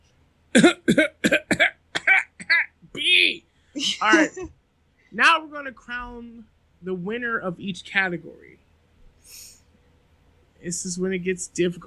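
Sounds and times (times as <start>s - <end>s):
speech: 0.6s - 1.1s, 3.9s - 8.6s, 10.6s - 11.8s
person coughing: 0.6s - 2.7s.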